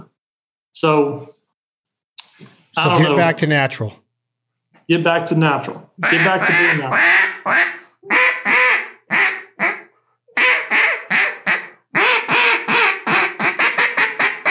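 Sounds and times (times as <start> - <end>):
speech: 0.8 - 1.4, 2.4 - 4.0, 4.9 - 8.2
duck call blown imitating a duck quack: 6.0 - 14.4.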